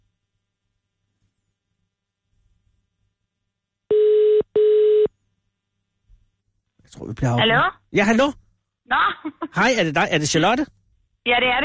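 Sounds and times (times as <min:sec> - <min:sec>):
telephone ringback tone heard through the line: 0:03.9 - 0:05.1
speech: 0:06.9 - 0:11.6.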